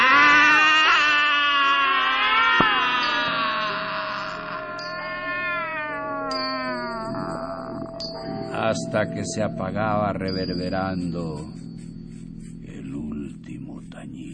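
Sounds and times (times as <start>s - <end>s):
cat meowing: 0.0s - 8.7s
speech: 8.7s - 11.7s.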